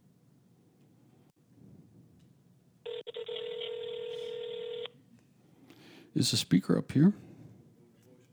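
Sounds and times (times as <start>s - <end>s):
ringback tone of an outgoing telephone call: 2.9s - 5.0s
speech: 6.1s - 7.3s.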